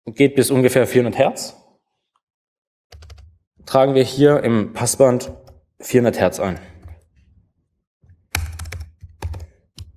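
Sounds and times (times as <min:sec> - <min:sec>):
speech: 0:00.1 - 0:01.6, 0:03.7 - 0:06.7
typing on a computer keyboard: 0:02.9 - 0:03.3, 0:08.3 - 0:09.9.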